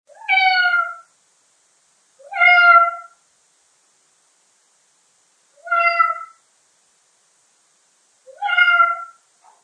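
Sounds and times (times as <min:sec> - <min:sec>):
cat meowing: 0:00.1 - 0:01.1, 0:02.2 - 0:03.2, 0:05.6 - 0:06.4, 0:08.3 - 0:09.2.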